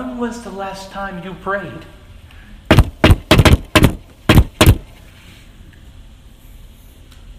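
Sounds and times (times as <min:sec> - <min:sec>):
speech: 0:00.0 - 0:02.0
loud knocking on a door: 0:02.7 - 0:04.9.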